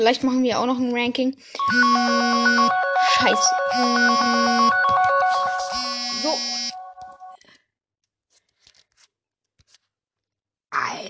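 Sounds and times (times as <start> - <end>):
speech: 0.0 - 5.5
mobile phone ringtone from an incoming call: 1.6 - 7.4.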